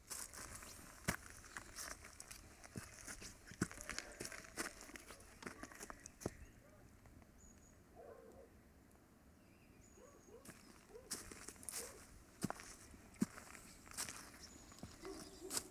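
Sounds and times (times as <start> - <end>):
footsteps on a stony mountain path: 0.0 - 6.5, 10.4 - 15.6.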